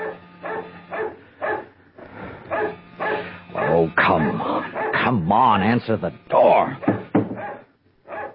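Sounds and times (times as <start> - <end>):
dog barking excitedly in sharp yaps: 0.0 - 1.7, 2.5 - 5.1, 6.8 - 8.3
speech: 4.0 - 6.9.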